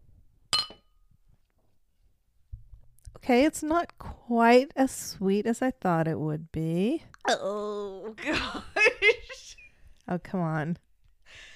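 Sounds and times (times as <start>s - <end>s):
glasses clinking in a toast: 0.5s - 1.0s
speech: 3.2s - 9.5s, 10.1s - 11.5s.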